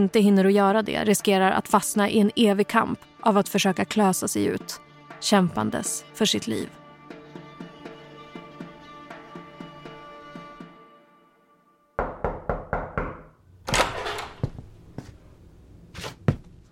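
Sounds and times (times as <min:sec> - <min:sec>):
speech: 0:00.0 - 0:06.8
loud knocks on a bedroom door: 0:12.0 - 0:13.4.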